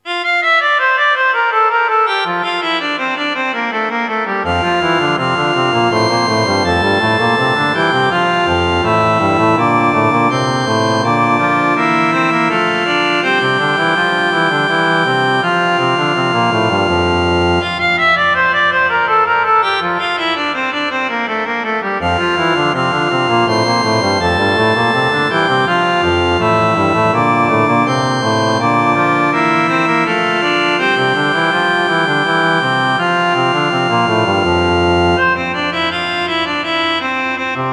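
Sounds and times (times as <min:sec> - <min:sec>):
organ playing: 0:00.0 - 0:37.7.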